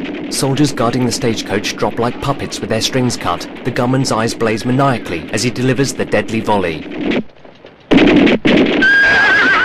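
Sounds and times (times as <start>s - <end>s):
speech: 0.3s - 7.3s
frightened horses whinnying: 8.8s - 9.6s.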